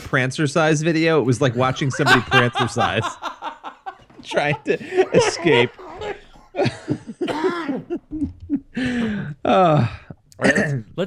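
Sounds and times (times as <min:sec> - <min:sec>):
speech: 0:00.1 - 0:03.3, 0:04.2 - 0:05.8, 0:08.8 - 0:11.0
laughter: 0:01.3 - 0:09.2
person coughing harshly: 0:04.8 - 0:08.4.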